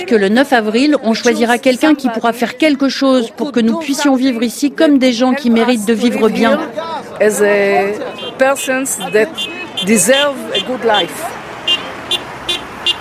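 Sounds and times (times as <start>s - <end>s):
speech: 0.0s - 11.4s
murmur of voices from a protest crowd: 0.0s - 11.6s
steady roadway traffic noise: 0.0s - 12.9s
car horns honking from passing motorists: 7.9s - 12.9s.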